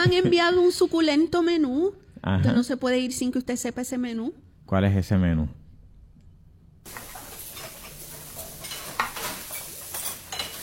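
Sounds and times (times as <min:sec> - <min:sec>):
speech: 0:00.0 - 0:05.6
food sizzling in a pan: 0:06.9 - 0:10.6
stirring clinks and scrapes against cookware: 0:06.9 - 0:10.6.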